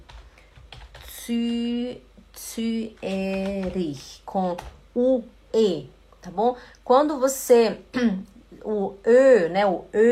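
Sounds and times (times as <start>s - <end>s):
light quick computer keyboard taps: 0.0s - 1.6s, 2.9s - 4.8s
speech: 1.3s - 10.1s.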